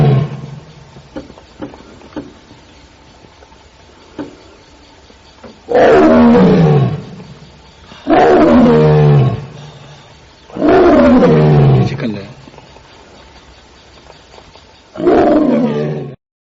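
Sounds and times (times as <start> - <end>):
tiger roaring: 0.0 - 0.7, 5.7 - 7.4, 8.0 - 9.8, 10.5 - 12.1, 15.0 - 16.2.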